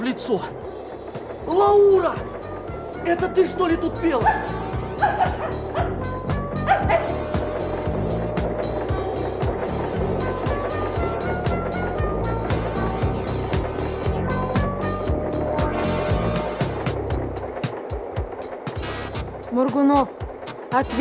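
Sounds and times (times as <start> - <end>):
steady low rumbling background: 0.0 - 20.9
speech: 0.2 - 0.7, 1.5 - 2.3, 3.0 - 7.3, 19.6 - 20.9
small fluffy white dog yelping and whimpering in a railway wagon: 4.2 - 6.0, 6.7 - 7.1.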